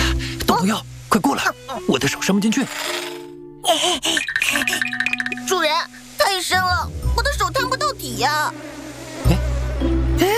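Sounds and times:
speech: 0.6s - 3.0s, 3.6s - 10.3s
returning scout bees buzzing: 2.3s - 10.3s.

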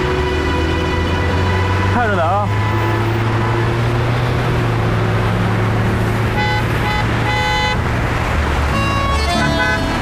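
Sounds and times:
car horn honking at a zebra crossing: 0.0s - 3.2s, 6.3s - 7.8s, 8.7s - 10.0s
steady low rumble of engine and traffic: 0.0s - 10.0s.

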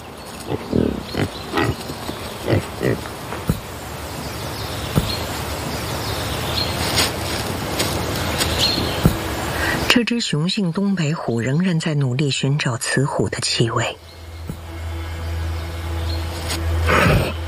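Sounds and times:
constant noisy background: 0.0s - 17.4s
wild boar grunting in a wild mountain landscape: 0.4s - 3.6s, 16.8s - 17.4s
speech: 0.5s - 1.3s, 2.5s - 3.2s, 10.0s - 14.1s.

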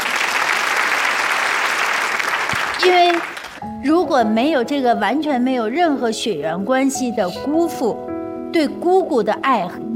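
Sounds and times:
studio audience applause at a televised talk show: 0.0s - 3.6s
speech: 2.8s - 9.9s.

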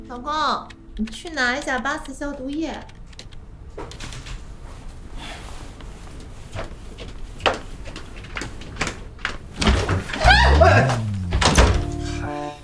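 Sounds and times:
speech: 0.1s - 3.0s, 10.7s - 11.0s
door opening in a family home: 8.3s - 12.3s.

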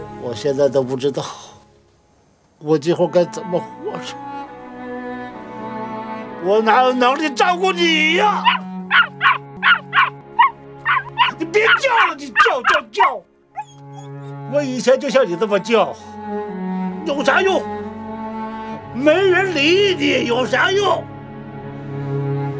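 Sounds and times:
speech: 0.2s - 1.5s, 2.6s - 4.3s, 6.4s - 8.6s, 11.7s - 13.3s, 14.5s - 16.4s, 17.0s - 17.8s, 19.0s - 21.1s
dog whimpering in high wavering whines: 8.4s - 14.4s.

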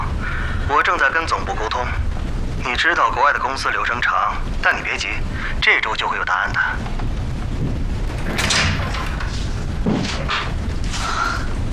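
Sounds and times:
low rumbling background: 0.0s - 11.7s
speech: 0.9s - 7.0s
dull knocks: 6.8s - 10.6s
heavy thud: 6.9s - 10.9s
office door swinging open: 8.1s - 10.6s.

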